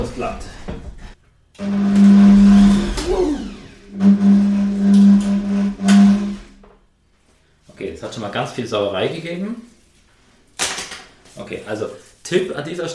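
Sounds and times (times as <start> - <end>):
speech: 0.0 - 0.8, 1.6 - 2.2, 8.0 - 9.7, 11.4 - 12.9
electric kitchen mixer whirring through flour and margarine: 1.6 - 6.6.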